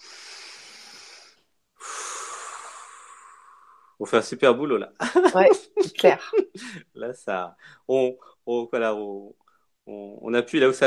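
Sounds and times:
deep breath: 0.0s - 4.0s, 6.6s - 6.9s, 7.6s - 8.4s
speech: 4.0s - 10.8s
laughter: 5.0s - 6.8s.

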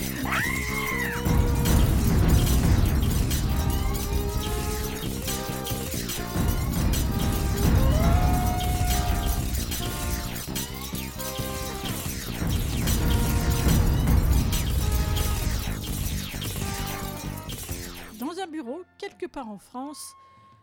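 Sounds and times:
shrill cries: 0.0s - 2.0s, 7.6s - 9.5s
robotic gunfire tearing through furniture: 1.2s - 18.2s
speech: 19.4s - 20.3s.

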